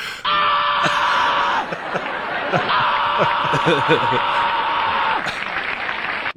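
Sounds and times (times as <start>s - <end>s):
man screaming in a comedy bit on a television talk show: 0.2s - 5.3s
faint laughter: 0.8s - 5.9s.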